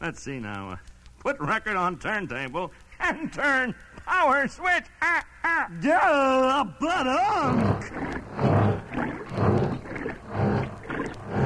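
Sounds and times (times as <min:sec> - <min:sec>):
speech: 0:00.1 - 0:08.8
washing machine running with a low churning rumble: 0:07.3 - 0:11.4.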